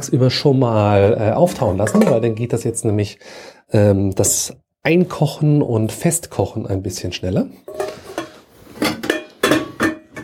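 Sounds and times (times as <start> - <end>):
speech: 0.0 - 8.0
metal cookware clanking as a cooking pot is taken from a shelf: 1.4 - 2.9, 7.6 - 10.2.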